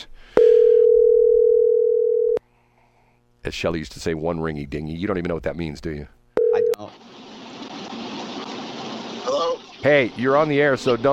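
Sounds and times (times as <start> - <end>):
telephone dial tone of outgoing call: 0.4 - 2.4, 6.4 - 6.9
speech: 3.4 - 6.2, 9.8 - 11.1.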